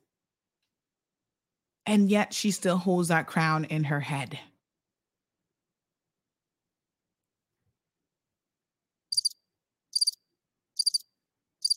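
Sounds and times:
speech: 1.9s - 4.5s
crickets chirping: 9.1s - 10.2s, 10.8s - 11.7s.

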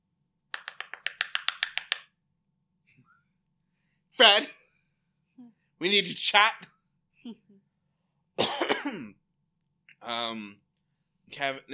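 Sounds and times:
knocking on a hard surface: 0.6s - 2.0s
speech: 4.2s - 4.6s, 5.8s - 7.4s, 10.1s - 10.6s, 11.3s - 11.7s.

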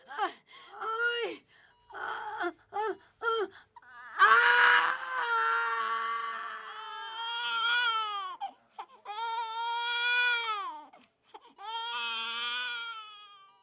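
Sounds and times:
undernourished newborn baby crying just after birth: 1.8s - 13.6s.

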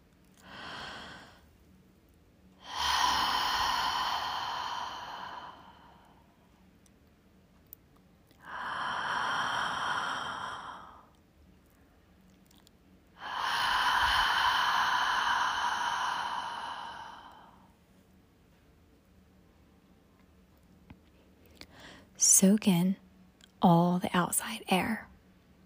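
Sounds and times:
deep breaths through the mouth during an outdoor walking meditation: 0.4s - 1.5s, 2.6s - 6.4s, 8.4s - 11.1s, 13.2s - 17.7s
speech: 22.4s - 23.0s, 23.6s - 25.1s.

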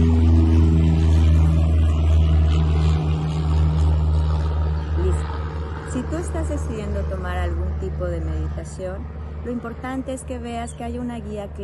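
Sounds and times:
airplane passing overhead: 0.0s - 11.6s
speech: 6.3s - 11.6s.

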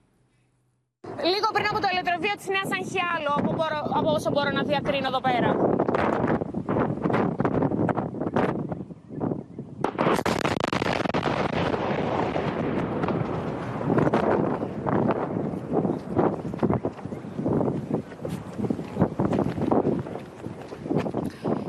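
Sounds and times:
roaring blast wave buffeting the microphone: 1.0s - 21.6s
speech: 1.2s - 6.1s
loud explosion: 9.8s - 17.7s
crackling thumping noise: 9.8s - 21.6s.

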